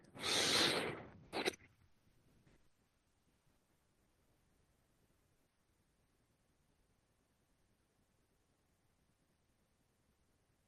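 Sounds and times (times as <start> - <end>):
forceful bhastrika pranayama bellows breathing through the nose: 0.1 - 1.1.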